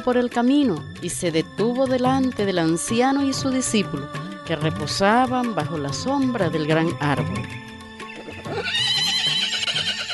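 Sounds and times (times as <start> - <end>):
speech: 0.0 - 7.7
horse neighing: 8.0 - 10.1.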